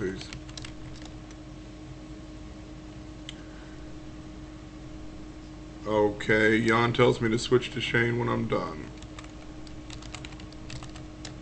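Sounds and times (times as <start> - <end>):
speech: 0.0 - 0.4, 5.8 - 9.0
rapid clicking of keys on a computer keyboard: 0.0 - 1.4, 9.0 - 11.4
low hum: 0.0 - 11.4.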